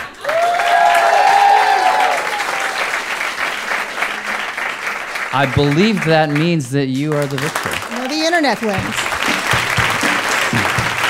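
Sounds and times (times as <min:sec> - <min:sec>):
large crowd clapping: 0:00.0 - 0:11.0
whoops: 0:00.2 - 0:02.9
speech: 0:05.4 - 0:09.0, 0:10.5 - 0:10.9.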